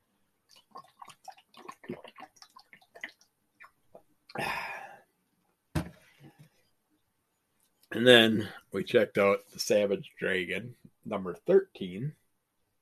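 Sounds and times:
person drinking water from a cup: 0:00.5 - 0:04.9
brief whooshing exhale: 0:04.4 - 0:05.1
speech: 0:08.0 - 0:12.2.

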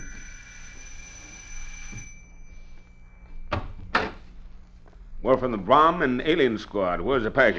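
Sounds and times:
house doorbell ringing: 0:00.0 - 0:03.6
speech: 0:05.2 - 0:07.5.

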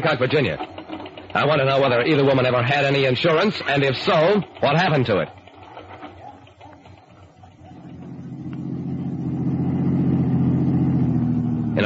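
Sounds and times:
speech: 0:00.0 - 0:05.4
rented car engine humming as it is driven: 0:06.2 - 0:11.8.

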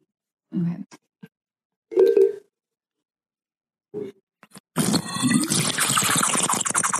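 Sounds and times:
slurping and gurgling through water bottle straws: 0:04.7 - 0:06.9
sipping water through the straws of water bottles: 0:04.8 - 0:06.9.

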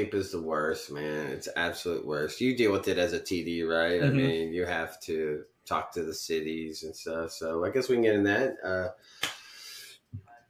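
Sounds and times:
speech: 0:00.0 - 0:09.4
person burping: 0:04.0 - 0:04.4
breathy hissing exhale: 0:09.0 - 0:10.0.

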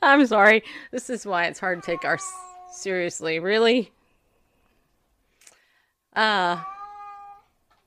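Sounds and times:
speech: 0:00.1 - 0:04.0, 0:06.1 - 0:06.7
cat meowing loudly: 0:01.7 - 0:02.9, 0:06.4 - 0:07.5.

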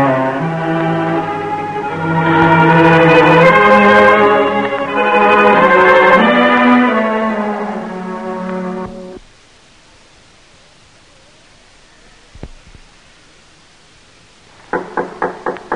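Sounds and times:
brief musical tone: 0:00.0 - 0:09.2
steady hiss of noise: 0:00.0 - 0:15.7
knocking on the wooden door of a shoemaker's shop: 0:14.7 - 0:15.7.

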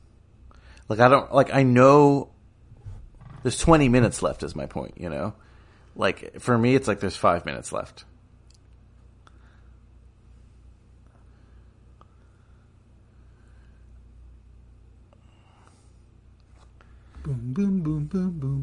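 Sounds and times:
speech: 0:00.9 - 0:02.3, 0:03.4 - 0:08.1, 0:17.3 - 0:18.6
rough struggling engine of a broken-down car rumbling: 0:02.6 - 0:05.1
clicks and knocks: 0:02.7 - 0:04.8.

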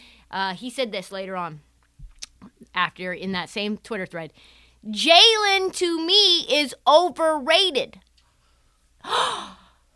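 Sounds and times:
speech: 0:00.3 - 0:01.7, 0:02.4 - 0:08.0, 0:09.0 - 0:09.6
sharp breathy gasp of mock surprise: 0:09.0 - 0:09.9.

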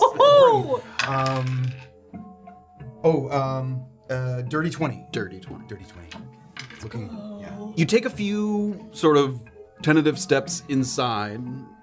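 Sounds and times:
small dice rolled across a hard tabletop in a game: 0:00.9 - 0:01.9
speech: 0:03.0 - 0:11.8.

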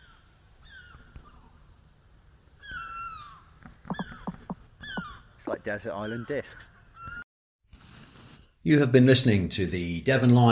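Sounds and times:
quiet hiss: 0:00.0 - 0:05.6
seagull calling: 0:02.6 - 0:07.2
speech: 0:05.5 - 0:06.7, 0:08.7 - 0:10.4.

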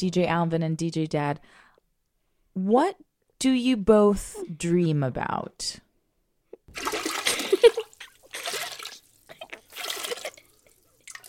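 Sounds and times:
speech: 0:00.0 - 0:01.6, 0:02.6 - 0:05.8, 0:06.7 - 0:07.0
water running and splashing: 0:06.7 - 0:11.2.

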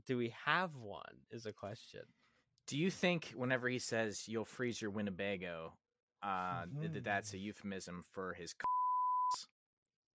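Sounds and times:
speech: 0:00.0 - 0:08.7
electronic beep: 0:08.6 - 0:09.4.

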